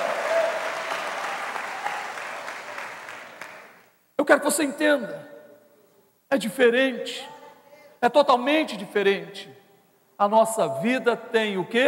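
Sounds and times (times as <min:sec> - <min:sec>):
congregation applauding: 0:00.0 - 0:03.9
speech: 0:04.3 - 0:05.3, 0:06.3 - 0:07.4, 0:08.0 - 0:09.6, 0:10.2 - 0:11.8.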